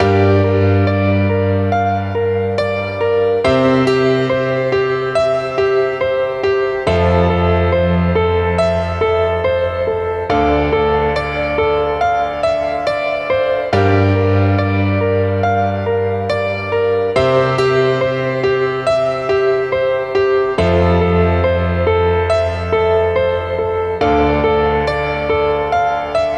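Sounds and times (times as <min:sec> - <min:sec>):
emotional piano loop in G minor: 0:00.0 - 0:26.3.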